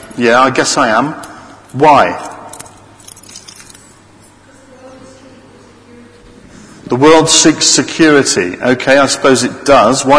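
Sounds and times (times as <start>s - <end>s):
low hum: 0.0s - 10.1s
speech: 0.2s - 2.3s, 6.9s - 10.1s
cluster of keys jangling: 2.2s - 4.0s.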